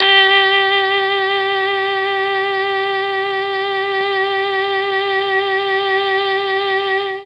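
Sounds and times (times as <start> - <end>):
mellotron G3 MKII saxophone: 0.0 - 7.2.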